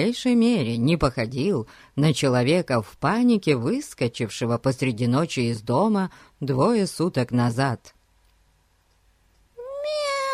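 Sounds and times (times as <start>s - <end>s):
speech: 0.0s - 8.0s
kitten meowing while trying to break free from a person's hands: 9.6s - 10.3s.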